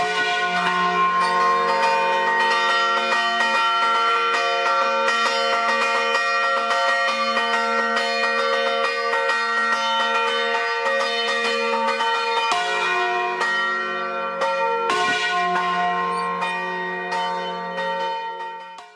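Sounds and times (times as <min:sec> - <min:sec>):
church bells rung by hand in a lively peal: 0:00.0 - 0:18.9.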